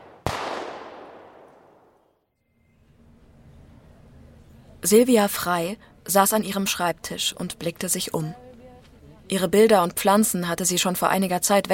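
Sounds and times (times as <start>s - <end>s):
loud gunshot with long echo: 0.0s - 2.0s
speech: 4.8s - 8.4s, 9.3s - 11.7s.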